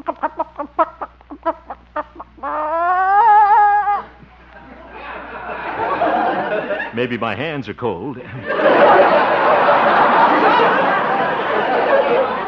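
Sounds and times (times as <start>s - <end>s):
hen clucking: 0.0s - 4.2s
laughter: 0.0s - 7.3s, 8.1s - 12.4s
speech: 7.0s - 12.4s.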